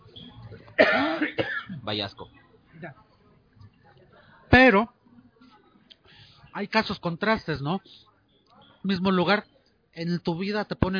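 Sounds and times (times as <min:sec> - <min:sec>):
harsh cough: 0:00.8 - 0:01.8
speech: 0:00.9 - 0:03.0, 0:04.7 - 0:05.0, 0:06.6 - 0:08.1, 0:08.8 - 0:10.9.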